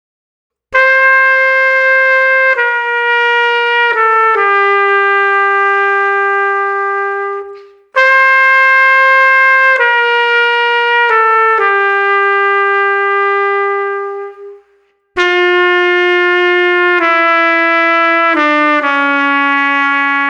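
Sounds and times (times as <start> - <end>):
sad legato trumpet: 0.7 - 20.2.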